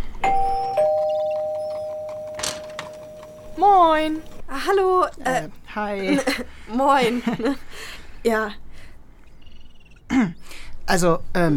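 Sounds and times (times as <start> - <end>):
two-tone doorbell chime: 0.2 - 3.7
speech: 3.6 - 8.6, 10.2 - 11.5
laughter: 6.0 - 7.9.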